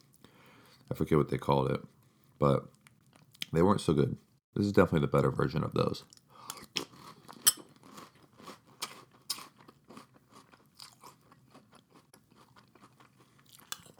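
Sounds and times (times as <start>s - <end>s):
speech: 0.9s - 2.8s, 3.5s - 6.2s
French Toast Crunch breakfast cereal being chewed: 6.0s - 13.9s.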